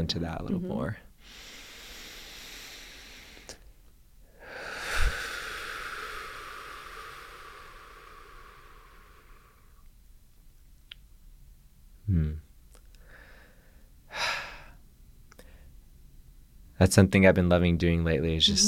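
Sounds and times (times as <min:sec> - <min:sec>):
speech: 0:00.0 - 0:01.4, 0:12.1 - 0:12.5, 0:16.8 - 0:18.6
deep breath: 0:01.2 - 0:03.7, 0:04.3 - 0:09.8, 0:13.0 - 0:14.8, 0:15.4 - 0:15.8.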